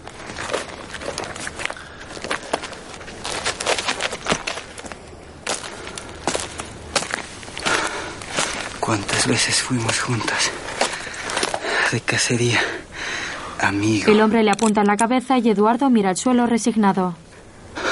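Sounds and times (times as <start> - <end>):
man's crunchy footsteps walking on the ground: 0.0 - 12.3
speech: 8.9 - 10.6, 11.9 - 12.8, 13.6 - 17.2.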